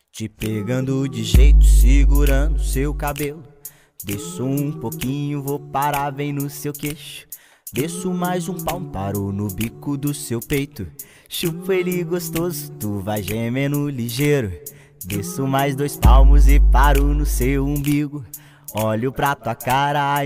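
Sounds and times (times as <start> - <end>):
male voice singing in Portuguese: 0.0 - 20.2
speech: 0.2 - 20.2
deep bass swell: 1.4 - 3.2.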